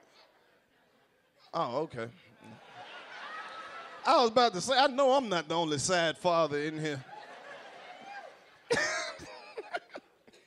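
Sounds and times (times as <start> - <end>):
speech: 1.5 - 2.6, 4.0 - 7.1
laughter: 2.4 - 5.7, 6.3 - 10.3
person coughing: 8.7 - 10.4.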